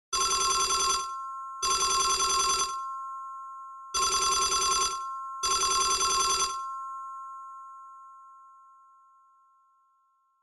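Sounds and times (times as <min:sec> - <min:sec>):
telephone ringing: 0:00.1 - 0:07.5.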